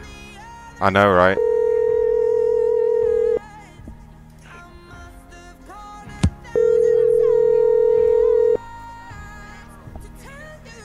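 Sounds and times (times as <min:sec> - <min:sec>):
speech: 0:00.8 - 0:01.4
electronic telephone ringback tone while a cell phone is called: 0:01.3 - 0:03.4, 0:06.6 - 0:08.6.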